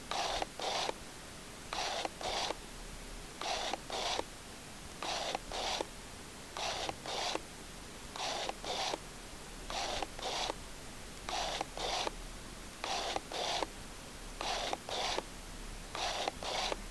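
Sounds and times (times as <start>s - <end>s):
Canon 5D Mk III phase autofocus adjusting: 0.1s - 1.0s, 1.7s - 2.6s, 3.4s - 4.3s, 5.0s - 5.9s, 6.6s - 7.4s, 8.2s - 9.0s, 9.7s - 10.6s, 11.3s - 12.2s, 12.8s - 13.7s, 14.4s - 15.3s, 16.0s - 16.8s.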